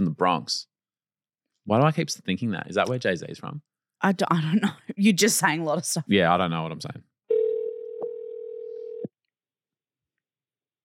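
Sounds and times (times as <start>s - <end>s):
speech: 0.0s - 0.7s, 1.6s - 7.1s
buzzy telephone dial tone while a phone call is being placed: 7.3s - 9.1s.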